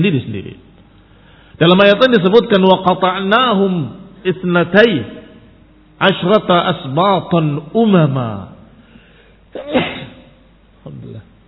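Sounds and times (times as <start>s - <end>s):
speech: 0.0s - 0.7s, 1.6s - 5.2s, 6.0s - 8.5s, 9.5s - 10.0s
single loud sneeze: 9.5s - 10.4s.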